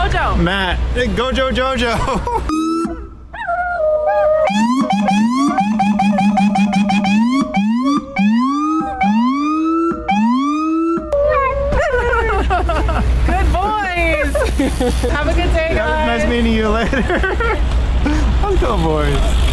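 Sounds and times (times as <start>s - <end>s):
speech: 0.1s - 2.7s, 4.5s - 7.1s, 14.6s - 19.4s
laughter: 1.8s - 3.0s, 11.7s - 18.4s
siren wailing and whooping: 2.5s - 12.5s
dogs howling along with a siren: 3.3s - 12.4s.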